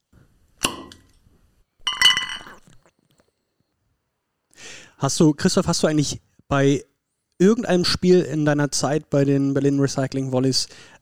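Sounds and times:
beer bottle opening: 0:01.8 - 0:02.9
speech: 0:05.0 - 0:11.0.

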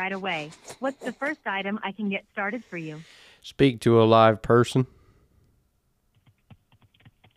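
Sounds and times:
speech: 0:00.0 - 0:05.0
keyboard typing sound effect: 0:06.1 - 0:07.3.

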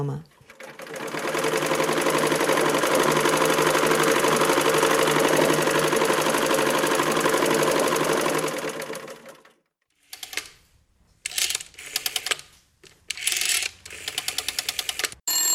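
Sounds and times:
speech: 0:00.0 - 0:00.4
sewing machine running: 0:00.4 - 0:10.4, 0:13.3 - 0:15.2.

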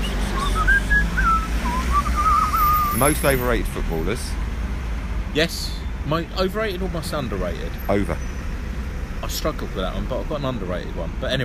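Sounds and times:
person whistling a wandering tune: 0:00.0 - 0:03.0
speech: 0:03.0 - 0:04.5, 0:05.3 - 0:08.4, 0:09.3 - 0:11.4.

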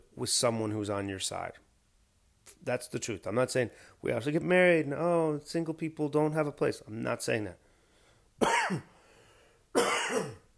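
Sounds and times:
speech: 0:00.2 - 0:01.6, 0:02.6 - 0:07.6, 0:08.4 - 0:08.9
person coughing harshly: 0:08.4 - 0:08.9, 0:09.8 - 0:10.5.

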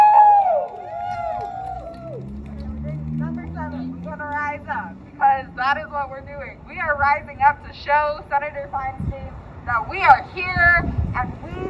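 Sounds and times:
loud high whoop: 0:00.0 - 0:02.4
crowd at a rally cheering: 0:00.0 - 0:02.8
murmur of many voices: 0:02.0 - 0:11.6
speech: 0:05.7 - 0:11.6.

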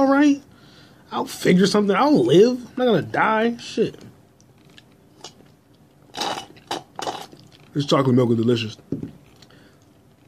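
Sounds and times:
speech: 0:00.0 - 0:00.5, 0:01.1 - 0:04.1, 0:07.7 - 0:09.2
crunching bites and chewing while eating breakfast: 0:04.4 - 0:07.8.

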